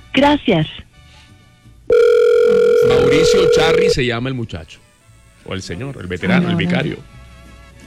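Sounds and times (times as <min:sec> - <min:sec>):
speech: 0:00.2 - 0:00.8, 0:02.9 - 0:04.8, 0:05.5 - 0:07.1
telephone keypad tones: 0:01.9 - 0:04.0.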